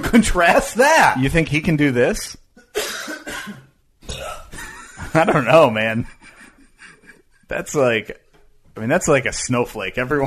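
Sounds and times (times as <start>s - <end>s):
speech: 0.1s - 2.4s, 5.2s - 6.2s, 7.5s - 8.2s, 8.8s - 10.2s
loud throaty cough-burp: 2.6s - 4.8s.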